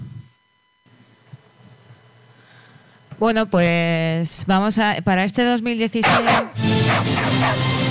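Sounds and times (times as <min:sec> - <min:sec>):
speech: 0:03.2 - 0:07.7
dog barking: 0:06.0 - 0:07.8.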